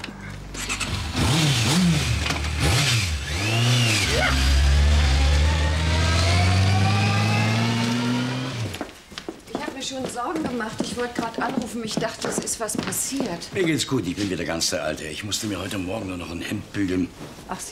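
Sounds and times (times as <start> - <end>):
car engine revving as it drives off: 0.6 - 8.8
speech: 10.2 - 17.7.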